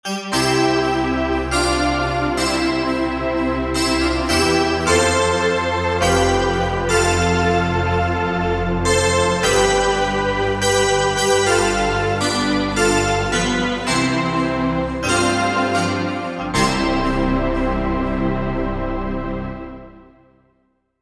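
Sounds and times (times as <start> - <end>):
bell pad: 0.3 - 19.1.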